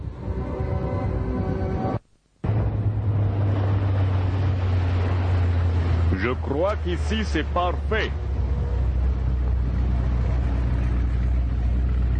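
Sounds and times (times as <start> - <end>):
rushing wind: 0.0 - 7.2, 7.8 - 12.1
outboard motorboat engine droning on open sea: 2.4 - 12.1
waves: 2.5 - 12.1
speech: 6.2 - 8.2.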